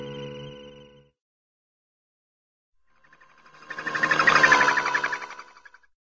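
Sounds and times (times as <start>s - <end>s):
cartoon sci fi space capsule passing by: 3.0s - 5.9s.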